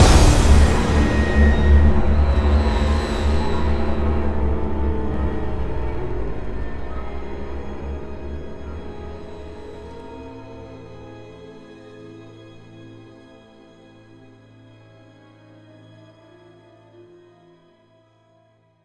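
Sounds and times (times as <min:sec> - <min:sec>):
ambient sting: 0:00.0 - 0:11.1.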